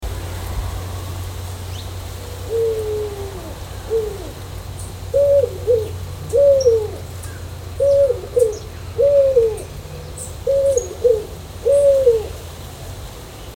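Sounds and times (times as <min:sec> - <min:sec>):
scaly-naped pigeon song: 0:02.4 - 0:12.4.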